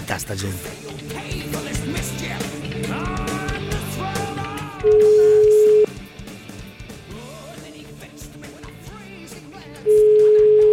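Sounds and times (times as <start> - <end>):
loud music: 0.0 - 10.1
telephone ringback tone as a call is placed: 4.9 - 5.9, 9.9 - 10.7.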